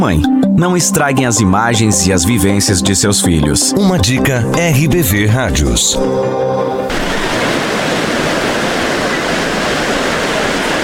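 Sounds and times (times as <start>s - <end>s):
speech: 0.0s - 7.5s
sea waves: 6.6s - 10.8s.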